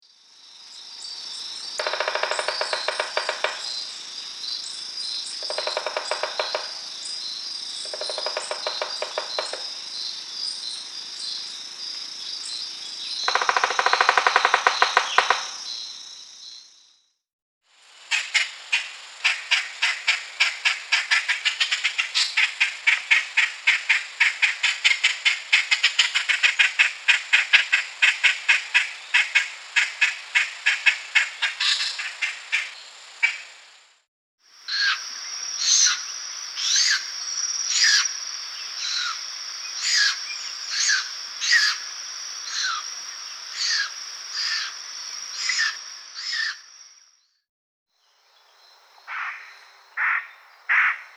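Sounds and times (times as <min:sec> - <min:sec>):
birds singing: 0:00.7 - 0:11.6, 0:12.2 - 0:16.8, 0:34.7 - 0:41.8, 0:48.0 - 0:51.1
Guadeloupe woodpecker: 0:01.8 - 0:04.0, 0:05.2 - 0:09.8, 0:13.2 - 0:16.0, 0:18.1 - 0:33.4, 0:34.7 - 0:37.1, 0:37.7 - 0:38.1, 0:38.8 - 0:41.8, 0:42.5 - 0:42.9, 0:43.5 - 0:44.8, 0:45.4 - 0:46.6, 0:49.0 - 0:51.1.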